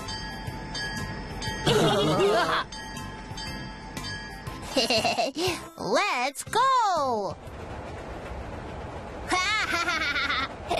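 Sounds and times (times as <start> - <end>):
steady tonal musical background: 0.0 - 5.8
speech: 4.8 - 7.5
person imitating a steam train chugging and puffing: 9.3 - 10.7.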